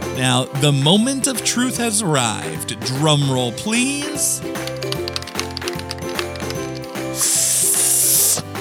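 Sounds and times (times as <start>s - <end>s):
speech: 0.2s - 5.0s
steady rhythmic music track: 0.7s - 8.5s
spray paint can hissing: 6.6s - 8.5s.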